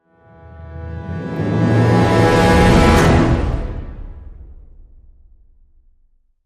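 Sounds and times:
orchestral brass hit in E: 0.2s - 5.1s.

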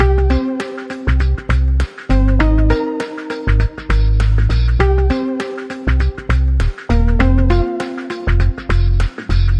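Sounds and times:
neutral bounce loop: 0.0s - 9.5s.

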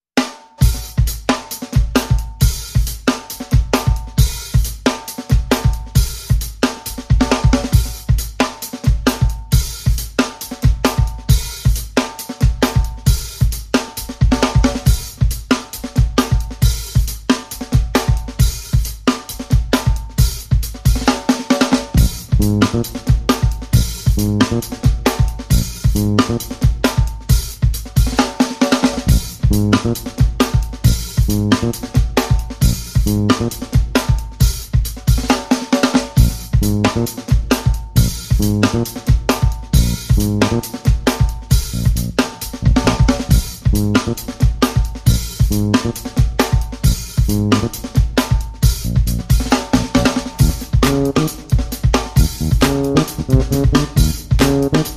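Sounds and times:
soul drums: 0.0s - 54.9s
soul bass: 22.0s - 26.8s, 29.0s - 33.7s, 36.2s - 37.3s, 38.0s - 39.0s, 39.7s - 40.8s, 41.5s - 44.3s, 45.1s - 46.1s, 46.9s - 47.9s, 48.6s - 54.9s.

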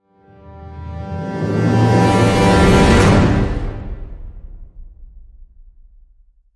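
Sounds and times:
orchestral brass hit in G: 0.3s - 5.1s.

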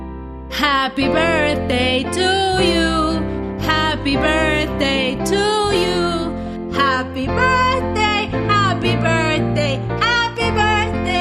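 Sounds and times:
woman singing a birthday song off key: 0.5s - 11.1s.

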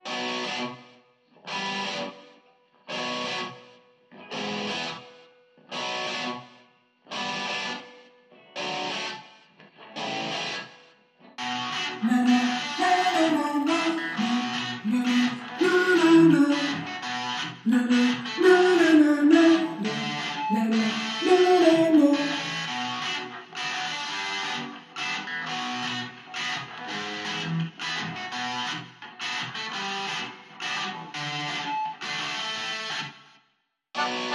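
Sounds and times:
electric guitar: 0.0s - 33.4s, 34.0s - 34.3s
vocals: 11.8s - 23.1s.

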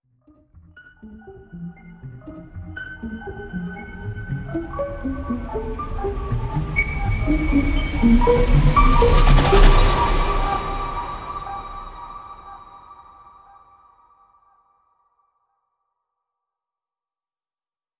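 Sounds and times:
surreal dreamy rising flute: 6.8s - 12.9s.

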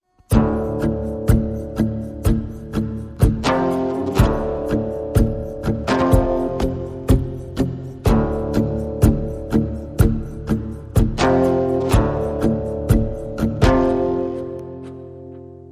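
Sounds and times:
rhythm section playing: 0.3s - 14.5s.

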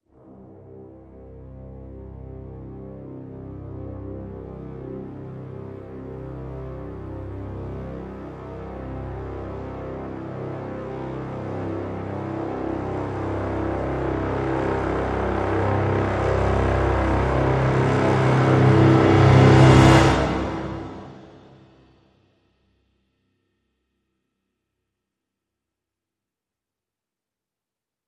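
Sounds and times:
low brass crescendo swell in C: 0.2s - 21.9s.

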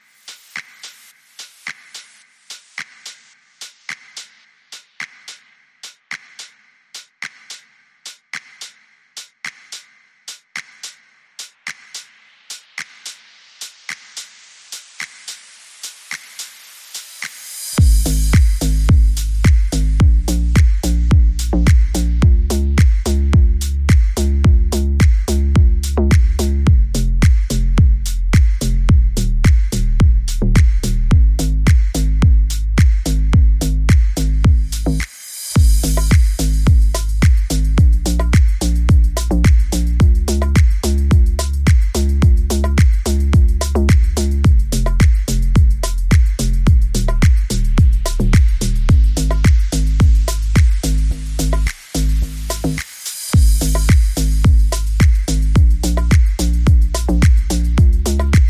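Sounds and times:
drums: 0.0s - 58.4s
bass: 17.8s - 58.4s.

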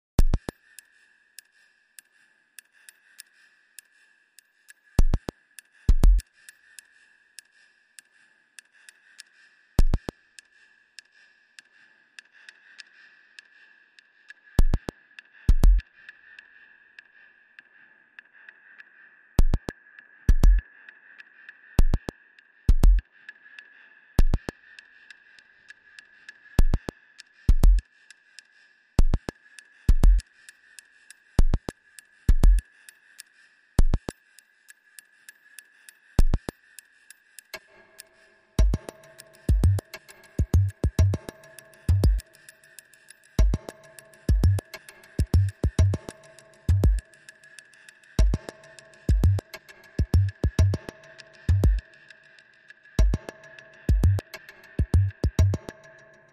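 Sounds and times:
percussion: 0.2s - 56.3s
bass: 5.9s - 6.2s, 15.5s - 15.8s, 20.3s - 20.6s, 22.7s - 23.0s, 27.5s - 27.8s, 29.9s - 30.2s, 32.3s - 32.6s, 38.6s - 38.9s, 39.5s - 41.3s, 41.9s - 42.2s, 43.4s - 43.7s, 44.3s - 47.0s, 48.2s - 48.4s, 49.1s - 50.9s, 51.5s - 51.8s, 53.0s - 53.3s, 53.9s - 55.7s.

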